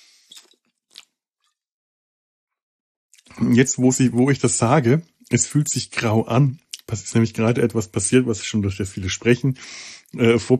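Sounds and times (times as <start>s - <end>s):
soft short slurping sips of a drink: 0.0s - 0.7s
speech: 3.3s - 10.5s.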